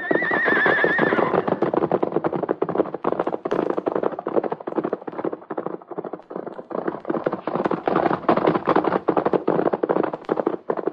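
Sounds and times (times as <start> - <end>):
white horse whinnying: 0.0 - 1.6
two milk-white horses galloping side by side: 0.0 - 10.9.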